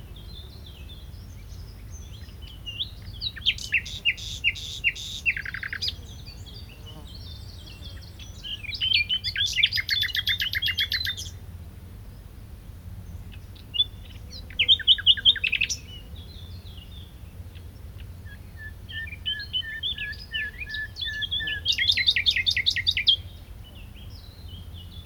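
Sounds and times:
common nightingale Luscinia megarhynchos song: 0.0 - 11.4, 13.1 - 25.0.

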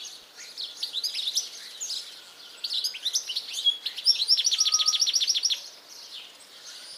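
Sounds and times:
European goldfinch Carduelis carduelis twittering: 2.8 - 5.6.

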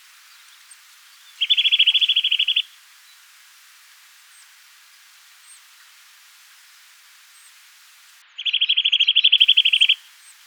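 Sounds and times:
Eurasian nuthatch Sitta europaea trilling: 1.4 - 2.6, 8.4 - 10.0.

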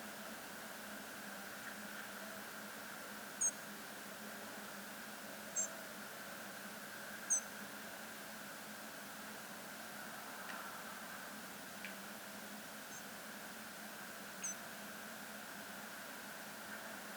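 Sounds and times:
steady background hiss and hum: 0.0 - 17.1
European robin Erithacus rubecula calls: 14.4 - 14.6.

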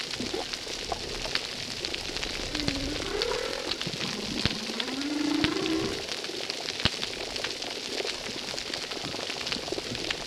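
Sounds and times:
steady crackling at a reef: 0.0 - 10.2
humpback whale song units at a reef: 0.2 - 6.4.

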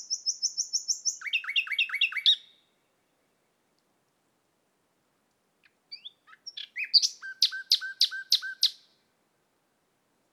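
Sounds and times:
common nightingale Luscinia megarhynchos song: 0.0 - 3.6, 5.6 - 9.1.

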